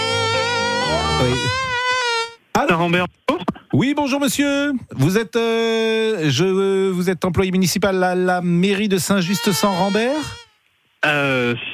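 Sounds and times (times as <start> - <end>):
voice imitating a whining mosquito on a phone call: 0.0 - 2.4, 9.2 - 10.5
speech: 1.2 - 1.7, 2.6 - 10.4, 11.0 - 11.7.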